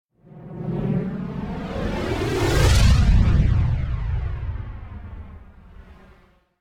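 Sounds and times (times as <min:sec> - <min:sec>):
phased whoosh: 0:00.3 - 0:06.2
phased explosion: 0:01.2 - 0:06.1.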